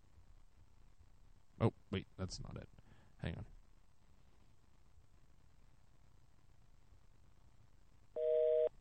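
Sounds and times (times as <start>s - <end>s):
quiet hum: 0.0s - 8.7s
speech: 1.6s - 3.6s
telephone busy signal: 8.2s - 8.7s.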